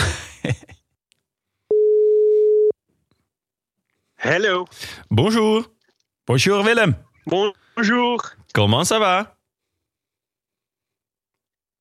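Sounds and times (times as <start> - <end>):
telephone ringing tone while placing a call: 1.7 - 2.7
speech: 4.2 - 9.4.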